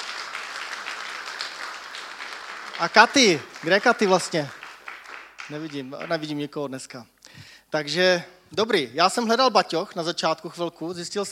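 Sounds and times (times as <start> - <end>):
audience applauding at a Sunday gathering: 0.0 - 6.4
speech: 2.8 - 4.6, 5.5 - 7.1, 7.7 - 11.3.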